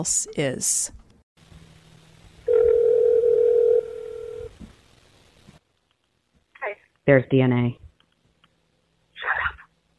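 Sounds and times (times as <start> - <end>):
speech: 0.0 - 1.0, 7.1 - 7.8
faint hum: 0.0 - 9.9
telephone dial tone: 2.5 - 4.4.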